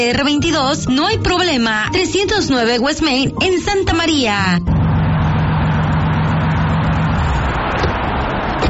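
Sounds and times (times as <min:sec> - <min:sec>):
speech: 0:00.0 - 0:04.8
new car engine revving: 0:04.6 - 0:08.6.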